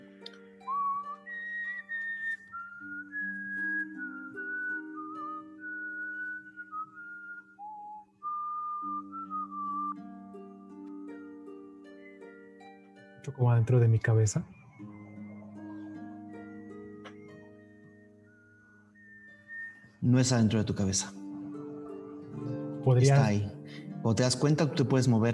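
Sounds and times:
high-pitched whistling tone: 0.6s - 10.0s, 11.9s - 12.6s, 13.2s - 23.3s
speech: 13.2s - 14.6s, 20.1s - 21.2s, 22.9s - 25.3s.

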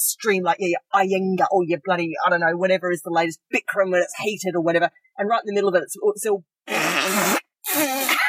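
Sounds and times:
speech: 0.0s - 6.6s
fart during a yoga session: 6.7s - 8.1s.

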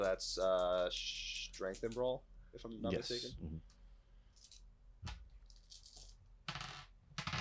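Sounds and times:
speech: 0.0s - 3.8s
dice rolling across a hard tabletop: 4.4s - 7.3s.

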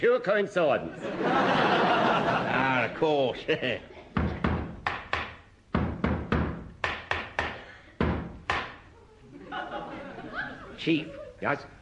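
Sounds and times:
speech: 0.0s - 4.3s, 10.8s - 11.7s
laughter: 0.8s - 4.2s, 9.0s - 11.6s
loud sharp knocking on a door: 4.2s - 8.8s.

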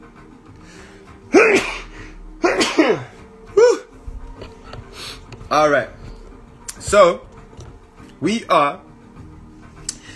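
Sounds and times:
person sneezing: 1.3s - 3.9s
speech: 5.5s - 6.0s, 6.9s - 7.3s, 8.2s - 8.9s.

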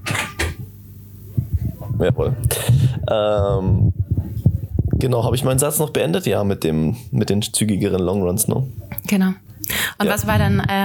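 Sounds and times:
door shutting with sharp knocks: 0.0s - 0.7s
soft low thuds: 1.3s - 5.7s
speech: 2.0s - 3.9s, 5.0s - 10.8s.

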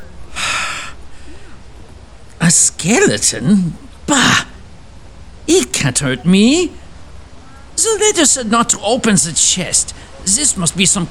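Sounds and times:
man drawing a deep calming breath: 0.0s - 1.8s, 10.0s - 10.2s
speech: 2.5s - 4.4s, 5.8s - 6.8s, 7.8s - 11.0s.

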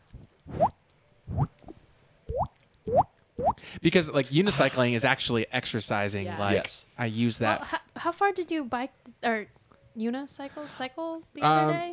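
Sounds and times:
mouth imitating water dripping: 0.5s - 3.6s
speech: 3.7s - 11.9s.

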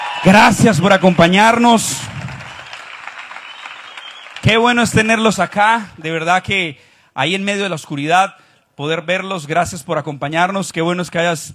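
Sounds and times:
crowd clapping: 0.0s - 5.9s
speech: 0.2s - 2.2s, 4.4s - 11.5s.

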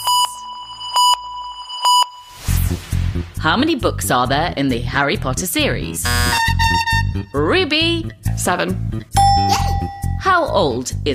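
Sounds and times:
quiz buzzer electronic beeps: 0.0s - 2.4s, 6.1s - 7.0s
speech: 2.7s - 9.6s, 10.3s - 11.1s.

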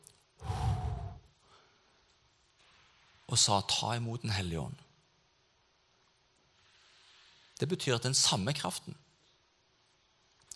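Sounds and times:
forceful breath blown out: 0.4s - 1.7s
speech: 3.3s - 4.8s, 7.6s - 9.0s.

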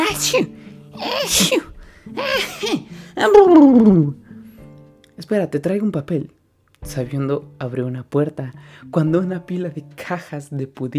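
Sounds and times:
person performing loud sneezes for a character allergic to perfume: 0.0s - 3.0s
speech: 0.2s - 4.2s, 5.2s - 10.9s.

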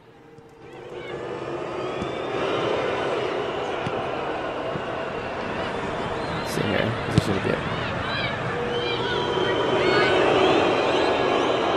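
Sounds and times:
large crowd booing: 0.0s - 11.7s
speech: 6.7s - 7.8s.

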